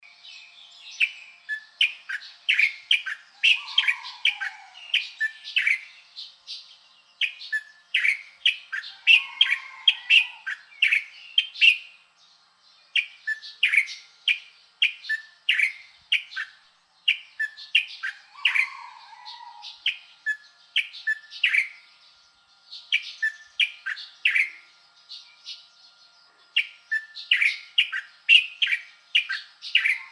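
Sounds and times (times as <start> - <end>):
Styan's bulbul calling: 1.0 - 6.4, 7.2 - 11.9, 13.0 - 21.9, 22.9 - 25.7, 26.6 - 30.0.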